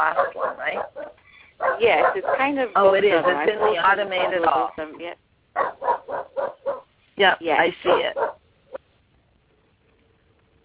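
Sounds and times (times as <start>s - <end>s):
speech: 0.0s - 1.0s, 1.8s - 5.7s, 7.2s - 8.4s
dog barking: 0.0s - 4.6s, 5.6s - 6.9s, 7.8s - 8.8s.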